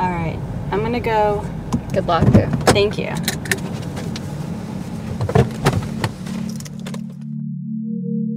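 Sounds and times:
traffic on a main road passing by a house: 0:00.0 - 0:07.2
speech: 0:00.8 - 0:03.4
keys jangling: 0:06.4 - 0:07.2.

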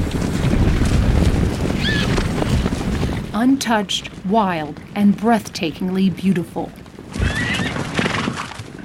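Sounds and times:
herd of wild mustangs' hooves thundering across high-desert badlands in northern Wyoming: 0:00.0 - 0:08.8
speech: 0:03.4 - 0:06.8
wild mustang whinnying: 0:07.2 - 0:08.2.

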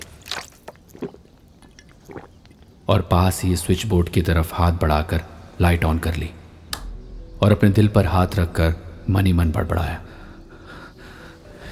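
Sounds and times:
person gulping down water from a bottle: 0:00.0 - 0:02.7
speech: 0:02.9 - 0:06.4, 0:07.4 - 0:10.2.

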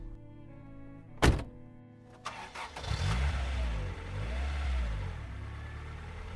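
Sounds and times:
car door shutting: 0:01.2 - 0:01.6
car engine starting, revving and pulling away: 0:02.2 - 0:06.3.

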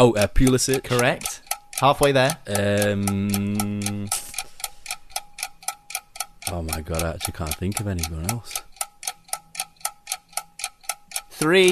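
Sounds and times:
speech: 0:00.0 - 0:04.2, 0:06.5 - 0:08.7, 0:11.4 - 0:11.7
quiz countdown timer ticking: 0:00.0 - 0:11.7.

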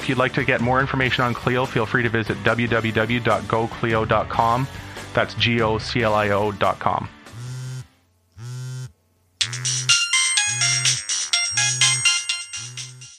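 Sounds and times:
speech: 0:00.1 - 0:07.2
phone ringtone for an incoming call: 0:08.4 - 0:13.1
bright busy ringtone melody over a steady repeating low pulse: 0:09.4 - 0:13.1.

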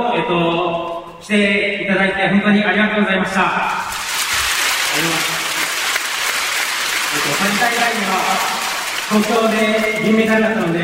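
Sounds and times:
speech: 0:00.0 - 0:04.0, 0:05.0 - 0:05.4, 0:07.2 - 0:10.8
large crowd clapping folded paper harisen fans: 0:03.8 - 0:10.8.

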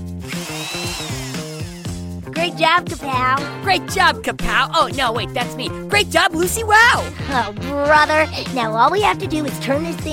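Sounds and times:
power drill whirring and revving: 0:00.2 - 0:02.2
speech: 0:02.4 - 0:10.1.

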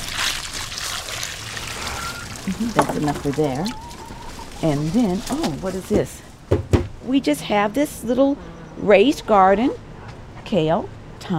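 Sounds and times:
water pouring from a pail onto plants: 0:00.0 - 0:05.8
speech: 0:02.5 - 0:03.9, 0:04.6 - 0:09.8, 0:10.5 - 0:11.3.

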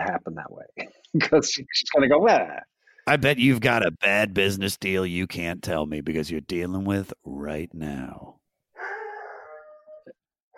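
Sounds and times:
speech: 0:01.2 - 0:08.3
dog howling: 0:08.8 - 0:10.5.

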